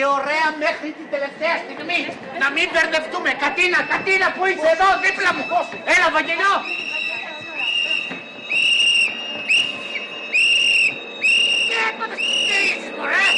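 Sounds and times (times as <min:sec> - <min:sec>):
speech: 0:00.0 - 0:06.8
steady rumbling background: 0:00.0 - 0:13.3
train warning whistle blasts: 0:04.8 - 0:13.3.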